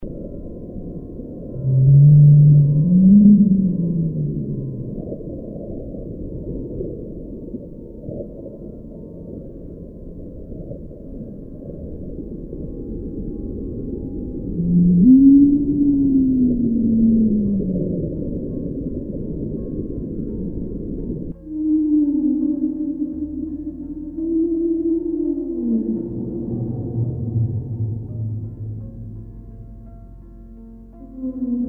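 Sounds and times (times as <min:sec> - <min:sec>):
whale calls: 0:01.4 - 0:09.5, 0:14.2 - 0:29.7, 0:30.8 - 0:31.6.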